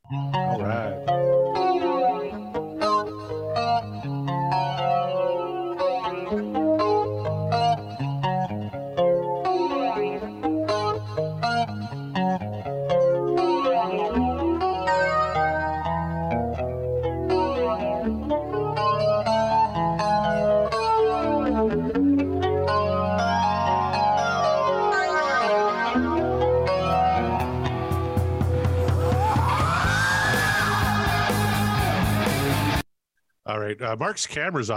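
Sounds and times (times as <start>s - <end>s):
processed electric guitar riff with swirling flanger modulation: 0.0s - 32.8s
speech: 0.1s - 1.5s, 33.8s - 34.7s
deeper bass line: 26.7s - 32.8s.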